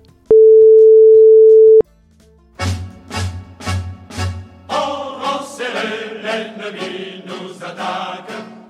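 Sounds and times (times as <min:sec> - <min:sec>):
telephone call tone: 0:00.3 - 0:01.8.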